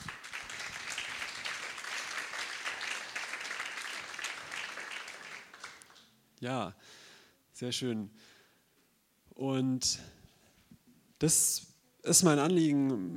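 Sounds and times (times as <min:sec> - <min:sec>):
crowd applauding in a room: 0:00.0 - 0:06.1
speech: 0:06.4 - 0:07.0, 0:07.6 - 0:08.4, 0:09.4 - 0:10.2, 0:11.2 - 0:13.1.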